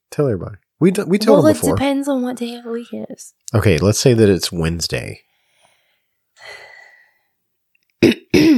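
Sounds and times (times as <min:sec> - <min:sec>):
speech: 0:00.2 - 0:05.3
soft breathy exhale: 0:05.3 - 0:07.4
throat clearing: 0:08.0 - 0:08.5.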